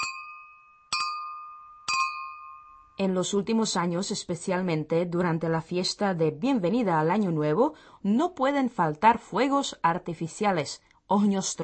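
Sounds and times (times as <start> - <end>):
champagne glasses clinking in a New Year toast: 0.0 - 2.9
speech: 3.0 - 11.6.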